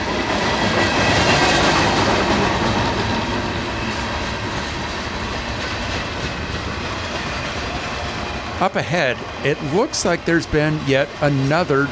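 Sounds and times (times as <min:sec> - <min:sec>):
freight train wheels clacking on rails: 0:00.0 - 0:11.8
long freight train rumbling by: 0:00.0 - 0:11.8
speech: 0:08.6 - 0:11.8.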